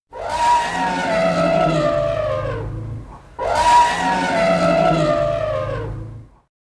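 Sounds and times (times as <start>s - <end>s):
wolf: 0.1s - 2.8s, 3.4s - 6.2s.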